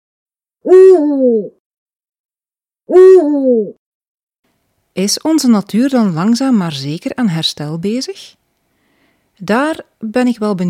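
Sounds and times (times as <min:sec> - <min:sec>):
speech: 0:00.6 - 0:01.6, 0:02.9 - 0:03.8, 0:05.0 - 0:08.4, 0:09.4 - 0:10.6
eagle owl hooting: 0:00.7 - 0:01.5, 0:02.9 - 0:03.8.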